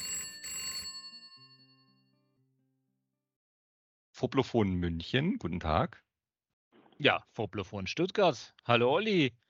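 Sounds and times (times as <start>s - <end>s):
old telephone bell ringing: 0.0s - 2.2s
speech: 4.2s - 6.1s, 7.0s - 9.4s.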